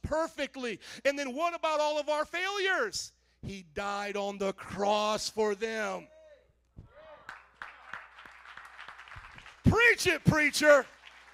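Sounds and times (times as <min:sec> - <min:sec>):
speech: 0:00.1 - 0:06.2, 0:09.8 - 0:11.0
light polite golf clap applause: 0:07.2 - 0:11.3.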